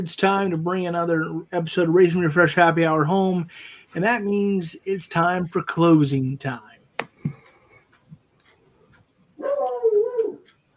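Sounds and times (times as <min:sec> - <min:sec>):
speech: 0:00.0 - 0:07.4
dog whimpering faintly: 0:09.4 - 0:10.5.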